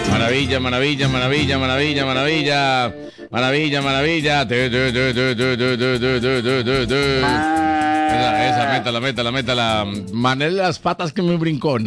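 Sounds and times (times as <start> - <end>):
speech: 0.3 - 11.8
cow mooing during milking: 7.2 - 8.9.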